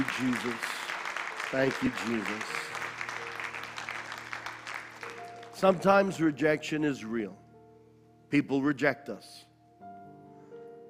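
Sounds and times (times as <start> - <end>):
speech: 0.0 - 0.8, 1.5 - 2.6, 5.6 - 7.4, 8.3 - 9.4
audience applause: 0.0 - 5.9.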